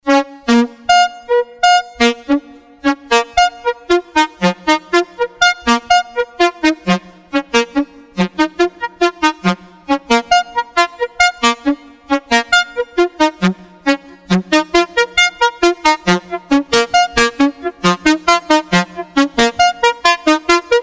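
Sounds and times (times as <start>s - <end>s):
physically modelled saxophone: 0.0s - 20.8s.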